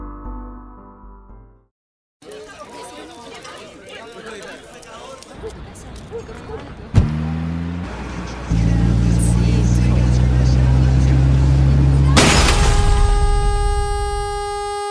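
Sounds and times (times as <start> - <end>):
car engine rumbling and revving: 6.2 - 14.8.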